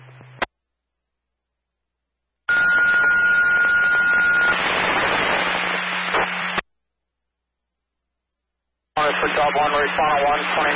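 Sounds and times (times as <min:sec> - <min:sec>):
fire dispatch radio alert tone for an automatic fire alarm call: 0:02.5 - 0:05.2
loud hissing radio static: 0:02.5 - 0:06.6, 0:09.0 - 0:10.7
speech: 0:09.5 - 0:10.7.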